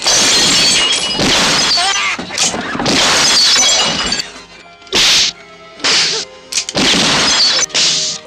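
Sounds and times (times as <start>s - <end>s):
glass shattering: 0.0s - 4.4s, 6.6s - 7.9s.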